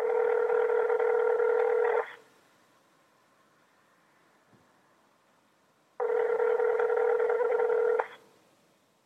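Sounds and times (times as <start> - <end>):
telephone ringing tone through the line of an unanswered mobile phone call: 0.0 - 2.2, 6.0 - 8.2.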